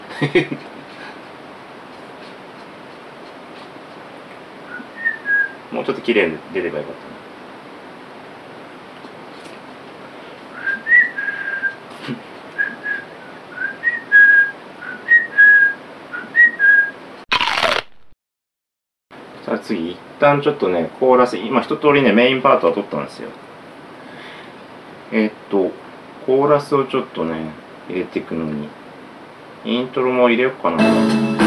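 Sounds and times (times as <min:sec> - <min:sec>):
speech: 0:00.2 - 0:00.8, 0:05.7 - 0:07.3, 0:19.7 - 0:23.4, 0:25.1 - 0:28.8, 0:29.6 - 0:31.3
person whistling a short melody: 0:10.6 - 0:11.8, 0:12.6 - 0:16.9.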